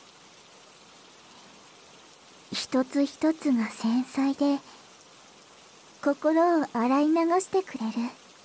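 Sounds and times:
gentle steady rain falling: 0.0 - 8.4
speech: 2.5 - 4.8, 6.0 - 8.2.

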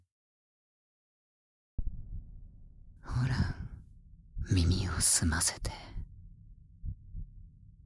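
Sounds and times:
quiet low rumbling background: 1.8 - 7.8
slow heartbeat: 1.8 - 7.8
speech: 5.0 - 5.9.

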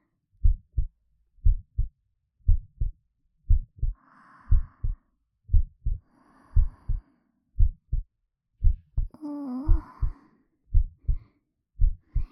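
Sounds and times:
mother's steady heartbeat heard through chest: 0.4 - 1.9, 2.5 - 7.0, 7.6 - 11.2, 11.8 - 12.3
soft breaths: 3.8 - 8.0, 8.6 - 12.3
hummed sigh: 9.2 - 10.2.

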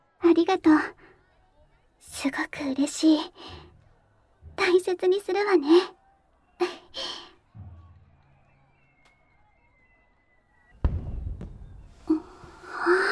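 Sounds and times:
soft breathy sounds: 0.2 - 1.1, 2.1 - 3.7, 4.6 - 5.9, 6.6 - 7.3, 12.1 - 13.1
speech: 0.4 - 1.0, 2.0 - 3.6, 4.6 - 6.0, 6.6 - 7.2
fireworks exploding: 10.8 - 12.6.

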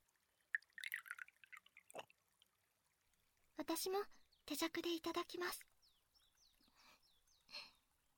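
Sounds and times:
sake poured into a small cup during a cherry-blossom viewing: 0.0 - 3.1
speech: 3.6 - 5.7.

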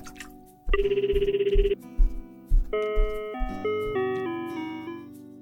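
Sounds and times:
phone ringing with a bright buzzy electronic trill: 0.7 - 1.8, 2.7 - 4.9
short melodic tone sequence: 0.7 - 5.1.

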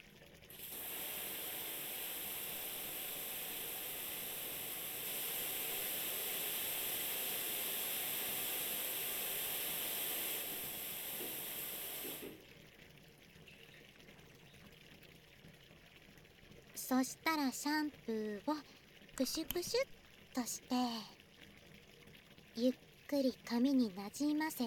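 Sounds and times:
shower spray wetting the hair of a person seated on a stool: 0.5 - 12.4
speech: 16.9 - 21.2, 22.6 - 24.6.

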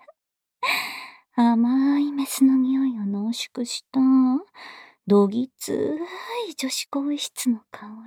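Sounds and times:
person breathing in and out as a guided breathing cue: 0.7 - 1.3
speech: 1.5 - 8.0.

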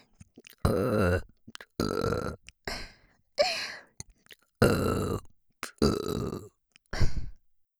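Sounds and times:
deep raspy burps: 0.7 - 2.4, 4.6 - 6.6.

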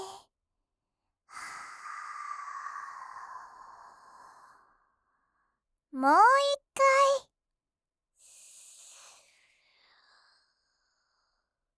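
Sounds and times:
guided breathing in through the nose and out through the mouth: 1.3 - 5.7, 8.2 - 11.7
speech: 6.0 - 6.2.

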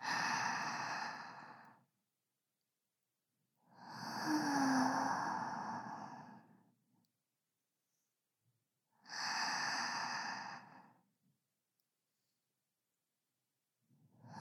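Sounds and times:
slow deep breathing of person lying relaxed on a futon: 0.0 - 1.8, 3.8 - 6.7, 9.2 - 11.0.

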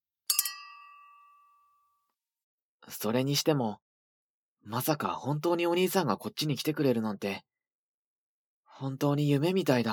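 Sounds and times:
glasses of juice clinking together in a toast: 0.3 - 1.6
speech: 2.9 - 3.8, 4.6 - 7.5, 8.8 - 9.9.

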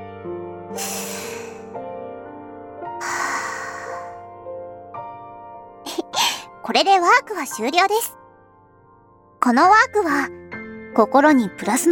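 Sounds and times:
soft sustained music: 0.0 - 11.8
speech: 0.7 - 1.0, 6.7 - 8.2, 9.5 - 11.8
deep breath at the end of a guided relaxation exercise: 0.8 - 1.8, 3.0 - 4.3.

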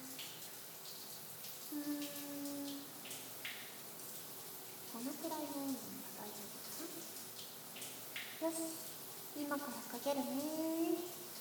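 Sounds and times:
water streaming from a shower or tap: 0.0 - 11.3
speech: 1.7 - 2.0, 5.0 - 7.2, 8.4 - 11.2.

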